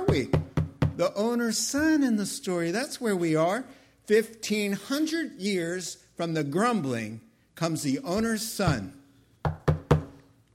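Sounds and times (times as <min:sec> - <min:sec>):
firm knocking on a wooden door: 0:00.0 - 0:01.0, 0:09.4 - 0:10.2
speech: 0:00.2 - 0:00.4, 0:01.0 - 0:09.0.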